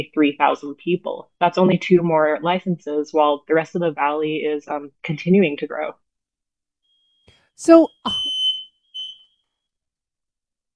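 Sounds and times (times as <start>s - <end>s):
speech: 0.0s - 6.0s, 7.6s - 8.4s
shrill high-pitched smoke alarm tone: 6.9s - 9.4s.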